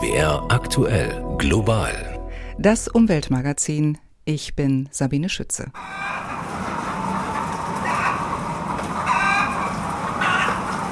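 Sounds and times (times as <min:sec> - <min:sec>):
speech: 0:00.1 - 0:06.2
crowded flock of broiler chickens clucking and chattering: 0:05.8 - 0:10.9.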